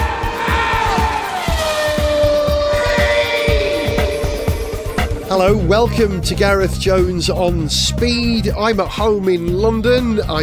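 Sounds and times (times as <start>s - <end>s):
racing car engine whining as it drives past: 0.2s - 5.3s
speech: 5.3s - 10.4s.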